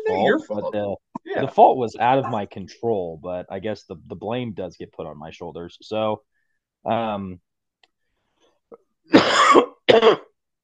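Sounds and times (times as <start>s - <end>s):
speech: 0.2s - 7.5s, 8.7s - 10.3s
person coughing from feeling under the weather: 9.1s - 10.3s.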